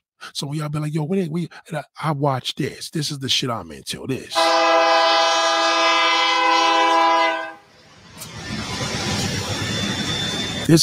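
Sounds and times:
speech: 0:00.3 - 0:05.1, 0:10.7 - 0:10.8
freight train horn blast: 0:04.4 - 0:07.7
passing freight train cars rumbling and clattering: 0:06.6 - 0:10.8.

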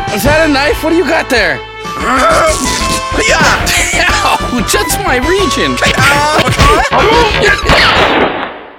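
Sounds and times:
speech: 0:00.2 - 0:08.4
gunshot: 0:07.3 - 0:08.7.

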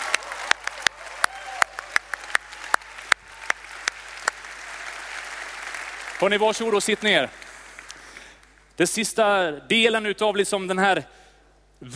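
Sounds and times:
room full of people applauding: 0:00.0 - 0:08.6
speech: 0:06.2 - 0:07.4, 0:08.8 - 0:11.2, 0:11.8 - 0:11.9.

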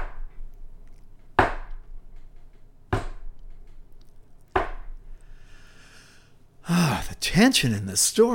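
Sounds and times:
heavy axe blows into wood outdoors: 0:01.4 - 0:01.8, 0:02.9 - 0:03.3, 0:04.5 - 0:04.9
speech: 0:07.3 - 0:08.3.

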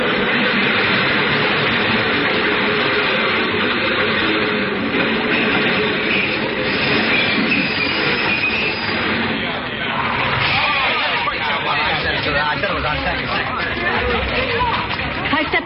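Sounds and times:
crowd murmuring: 0:00.0 - 0:15.6
subway train arriving through tunnel: 0:00.0 - 0:15.6
faint metallic squeals of subway train: 0:06.0 - 0:09.2.

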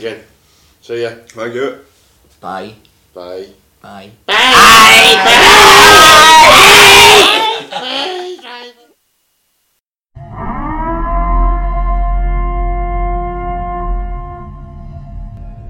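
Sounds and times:
speech: 0:00.0 - 0:07.4
laughter: 0:07.3 - 0:08.8
ominous civil defense siren wailing: 0:10.2 - 0:14.7.

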